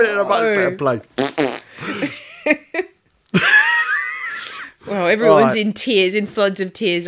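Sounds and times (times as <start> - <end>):
speech: 0.0 - 2.9, 4.9 - 7.0
loud drawn-out buzzy fart sound: 1.2 - 1.8
breathy laughing bursts: 3.4 - 4.8.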